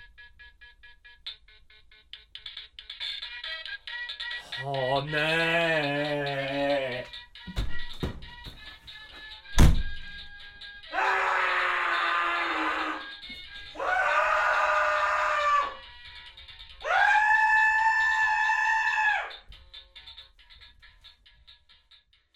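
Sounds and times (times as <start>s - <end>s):
speech: 4.6s - 7.1s
person screaming: 5.0s - 7.1s, 10.9s - 13.1s, 13.7s - 15.8s, 16.8s - 19.3s.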